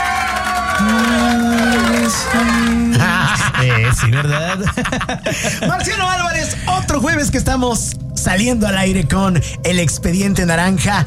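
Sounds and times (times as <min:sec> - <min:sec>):
crowd applause: 0:00.0 - 0:03.3
crowd drawn-out wavering voices moaning: 0:00.0 - 0:03.9
laughter: 0:00.6 - 0:06.2
speech: 0:04.0 - 0:11.0.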